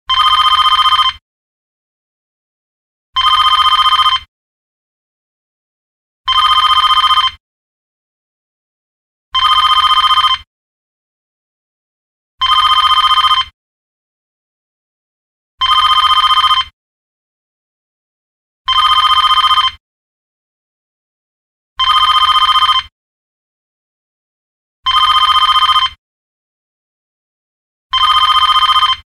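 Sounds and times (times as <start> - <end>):
electric telephone ringing: 0.1 - 1.2, 3.2 - 4.3, 6.3 - 7.4, 9.4 - 10.5, 12.4 - 13.6, 15.6 - 16.7, 18.7 - 19.8, 21.8 - 22.9, 24.9 - 26.0, 28.0 - 29.0.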